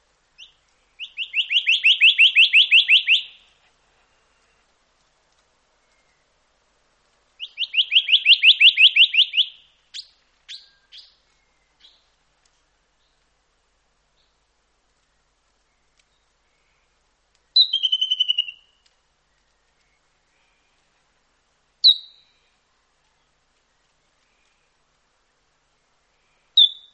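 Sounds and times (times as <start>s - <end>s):
White throated treecreeper: 0.0s - 26.9s.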